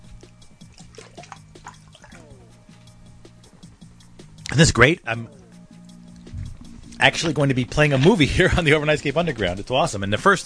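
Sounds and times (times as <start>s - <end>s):
water running or pouring for a drink: 0.6s - 2.4s
speech: 4.6s - 5.4s, 7.0s - 10.4s.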